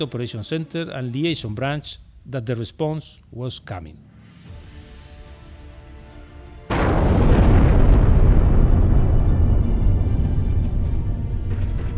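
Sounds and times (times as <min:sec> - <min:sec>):
speech: 0:00.0 - 0:04.1
explosion from fighter jet air strike: 0:06.7 - 0:11.9.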